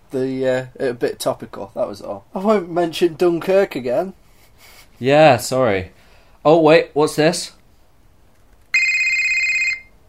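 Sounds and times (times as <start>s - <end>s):
speech: 0.1s - 7.6s
loud electronic telephone ring: 8.7s - 10.0s.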